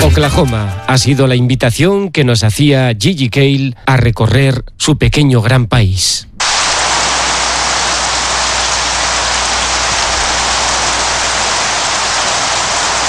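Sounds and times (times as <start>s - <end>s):
speech: 0.2s - 6.3s
heavy rain pattering on surfaces outside a ranch: 6.4s - 13.0s.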